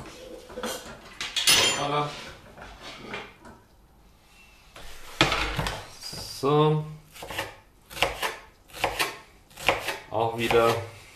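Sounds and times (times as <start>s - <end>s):
kitchen utensils clattering: 0.0s - 2.1s
speech: 1.8s - 2.2s, 6.4s - 7.0s, 10.2s - 11.0s
knife chopping half an onion on a cutting board: 7.1s - 10.9s.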